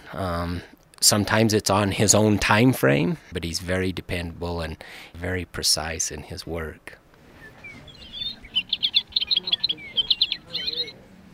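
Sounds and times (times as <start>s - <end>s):
speech: 0.1s - 7.0s
faint murmur in a bookstore: 7.1s - 11.3s
singing stuffed toy bird chirping in a bookstore: 7.9s - 10.9s.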